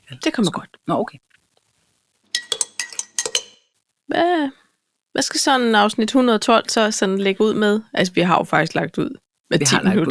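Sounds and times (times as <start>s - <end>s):
speech: 0.1s - 1.3s, 4.1s - 4.6s, 5.2s - 10.1s
ceramic coffee cups clinking together in a toast: 2.4s - 3.7s.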